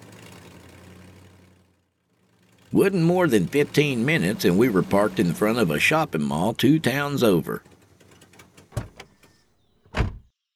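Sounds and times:
speech: 0:02.7 - 0:07.7
automatic sliding glass doors of a shopping mall clunking: 0:08.8 - 0:09.3, 0:09.9 - 0:10.3.

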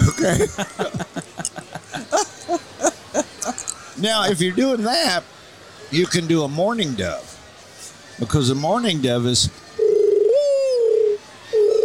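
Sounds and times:
laughter: 0:00.0 - 0:03.8
speech: 0:00.2 - 0:01.1, 0:04.0 - 0:07.3, 0:08.2 - 0:09.6
person whistling an imitated screech owl call: 0:10.0 - 0:11.8.

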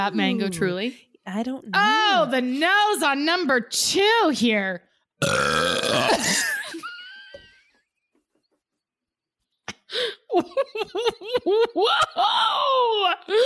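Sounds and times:
speech: 0:00.0 - 0:06.5, 0:10.0 - 0:13.4
loud belch after drinking seltzer: 0:05.2 - 0:06.4
person laughing rhythmically and breathily: 0:06.0 - 0:07.0, 0:09.7 - 0:12.5.

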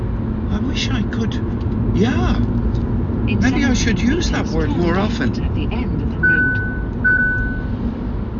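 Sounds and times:
low rumble of the moving car's engine: 0:00.0 - 0:08.3
road noise: 0:00.0 - 0:08.3
speech: 0:00.8 - 0:06.3
car driver-attention warning tones: 0:03.3 - 0:07.8.

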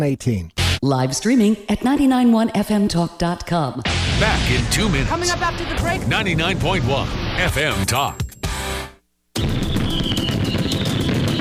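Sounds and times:
speech: 0:00.0 - 0:08.2
fireworks exploding in rapid crackling pops: 0:09.4 - 0:11.3
high whistling tone gliding downward: 0:09.4 - 0:11.3.

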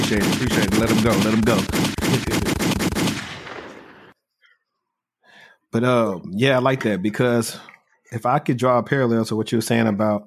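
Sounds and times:
rapid gunshot sound effects: 0:00.0 - 0:04.1
speech: 0:00.1 - 0:02.7, 0:05.7 - 0:10.2.

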